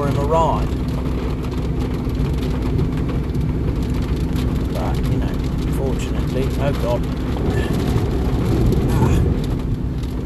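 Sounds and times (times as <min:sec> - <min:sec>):
rain with large raindrops drumming on a car roof and windows: 0:00.0 - 0:10.2
speech: 0:00.3 - 0:00.8, 0:06.4 - 0:08.0.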